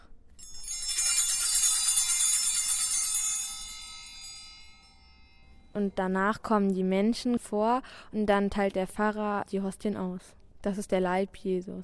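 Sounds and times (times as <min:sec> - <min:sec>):
cluster of small altar bells ringing during communion: 0:00.3 - 0:06.3
speech: 0:05.8 - 0:11.8.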